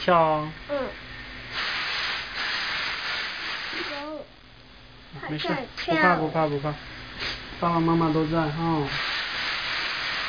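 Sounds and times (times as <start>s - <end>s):
speech: 0.0s - 1.0s, 5.1s - 9.1s
pressure cooker hissing steam: 0.7s - 4.2s, 7.1s - 10.2s.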